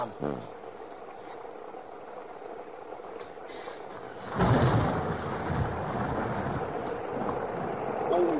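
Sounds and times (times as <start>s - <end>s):
heavy rain pouring on a cold day: 0.0s - 8.3s
thunder rumbling low: 3.9s - 8.3s.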